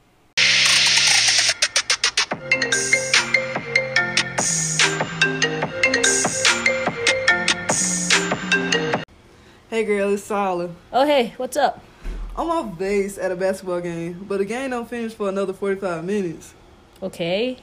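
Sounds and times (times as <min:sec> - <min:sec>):
electronic phone ringtone for an incoming call with a bouncy synthesized melody: 0:00.4 - 0:09.0
speech: 0:09.8 - 0:17.6.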